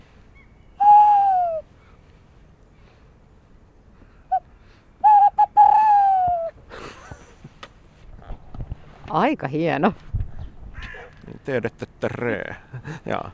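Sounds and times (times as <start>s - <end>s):
person imitating male tawny owl fanfare hoot: 0.8s - 1.6s, 4.3s - 6.6s
speech: 9.2s - 10.1s, 11.4s - 13.3s.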